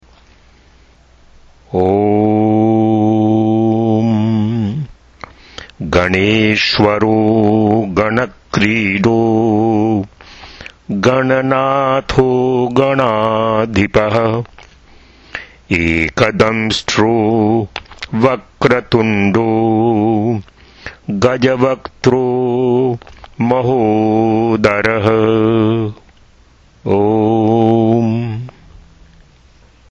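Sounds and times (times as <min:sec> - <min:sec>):
person chanting in Sanskrit: 0:01.7 - 0:05.0, 0:05.8 - 0:10.1, 0:10.9 - 0:14.5, 0:15.7 - 0:26.0, 0:26.8 - 0:29.0.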